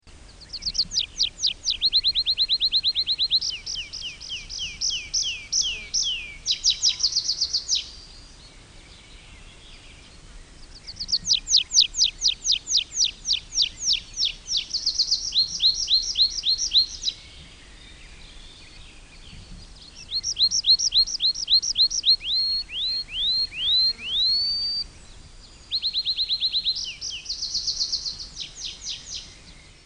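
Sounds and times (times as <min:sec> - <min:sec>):
tree pipit singing: 0:00.2 - 0:29.8.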